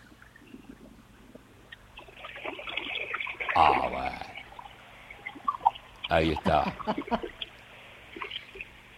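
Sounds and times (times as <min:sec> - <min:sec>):
water splashing surges around a boat: 0:00.0 - 0:08.9
speech: 0:03.6 - 0:04.2, 0:06.1 - 0:07.4.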